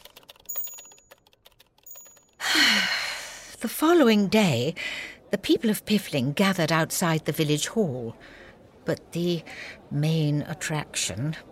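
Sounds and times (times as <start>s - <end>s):
typewriter keys clacking: 0.0s - 2.4s
speech: 3.6s - 11.4s.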